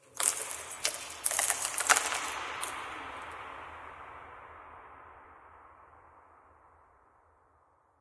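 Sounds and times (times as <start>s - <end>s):
rock debris ambience for video games: 0.0s - 3.4s.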